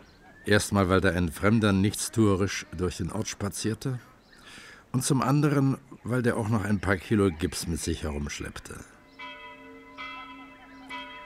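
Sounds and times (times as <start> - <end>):
speech: 0.4 - 4.1, 4.9 - 8.9
old village church bell tolling: 8.3 - 11.2.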